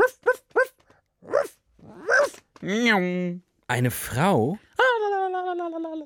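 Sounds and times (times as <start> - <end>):
voice imitating a barking dog: 0.0 - 3.2, 4.7 - 6.0
speech: 2.6 - 4.7.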